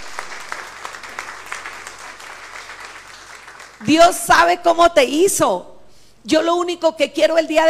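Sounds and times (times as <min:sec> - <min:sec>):
crowd applauding: 0:00.0 - 0:04.0
speech: 0:03.8 - 0:07.6.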